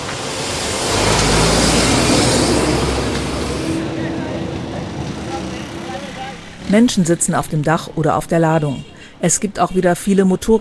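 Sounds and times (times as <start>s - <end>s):
heavy garbage trucks rumbling past: 0.0s - 9.2s
speech: 6.7s - 10.5s.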